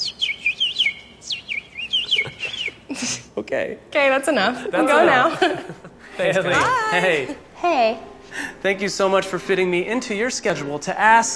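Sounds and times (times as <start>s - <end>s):
person whistling a bird call: 0.0s - 2.8s
laughter: 2.0s - 3.2s, 4.6s - 7.4s
speech: 3.4s - 11.3s.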